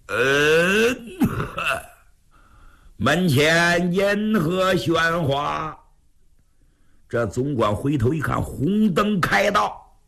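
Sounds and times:
storyteller's voice imitating someone coughing: 0.1s - 2.0s
speech: 3.0s - 5.8s, 7.1s - 9.8s.

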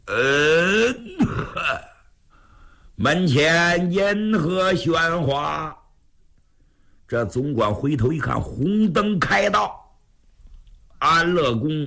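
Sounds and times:
speech: 0.1s - 1.0s, 3.0s - 5.8s, 7.1s - 9.8s, 11.0s - 11.8s
man's voice imitating a cough with throaty rough bursts: 0.1s - 2.0s.

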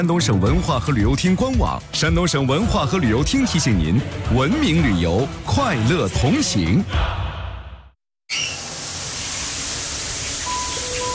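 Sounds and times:
speech: 0.0s - 7.3s
water rushing from a 160 mm diameter shower head: 8.3s - 11.1s.

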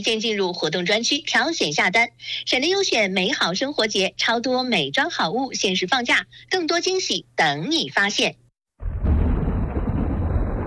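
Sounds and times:
speech: 0.0s - 8.4s
spring thunderclap rumbling: 8.8s - 10.6s.

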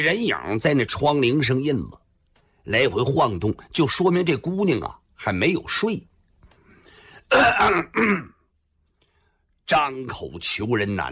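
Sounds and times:
speech: 0.0s - 2.0s, 2.6s - 6.1s, 7.3s - 8.4s, 9.7s - 11.1s
man giving forced throat-clearing coughs: 7.3s - 8.5s.

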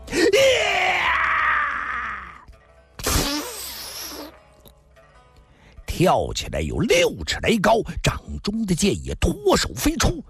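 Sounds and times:
voice imitating a man's furious roar: 0.1s - 2.5s
harsh shout: 0.3s - 2.4s
speech: 6.0s - 10.2s.

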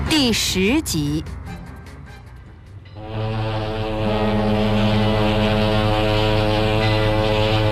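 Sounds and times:
speech: 0.2s - 1.4s
passenger ship's horn long steady blast: 2.9s - 7.7s.

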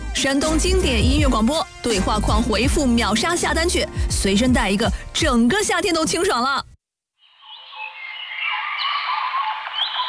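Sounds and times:
speech: 0.2s - 6.7s
dense chorus of birds chirping and trilling: 7.3s - 10.0s.

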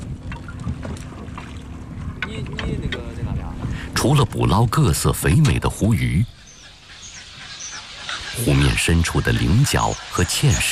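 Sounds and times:
fishing boat motors droning on a lake: 0.0s - 10.6s
water noise on a lake: 0.0s - 10.6s
wind over open water: 0.0s - 10.6s
faint voices calling out: 2.0s - 10.6s
speech: 4.0s - 6.4s, 8.4s - 10.6s.

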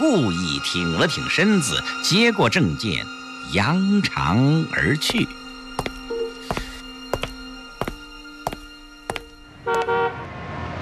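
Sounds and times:
speech: 0.0s - 5.4s
car horn honking: 9.6s - 10.2s.

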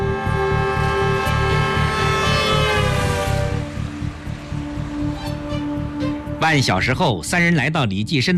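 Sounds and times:
car engine starting and driving away: 0.0s - 6.4s
speech: 6.5s - 8.3s.

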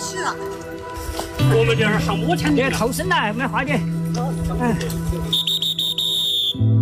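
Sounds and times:
speech: 0.3s - 0.7s, 1.5s - 5.5s
shrill high whistle blown: 5.3s - 6.7s.

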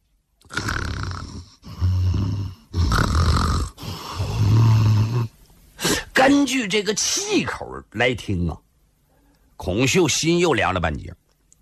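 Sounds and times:
person imitating loud snoring: 0.4s - 5.4s
speech: 6.3s - 8.6s, 9.6s - 11.2s.

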